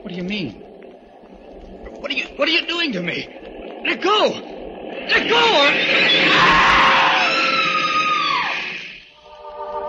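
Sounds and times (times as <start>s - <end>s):
speech: 0.1s - 0.6s, 2.0s - 6.7s
woman screaming: 6.2s - 8.7s.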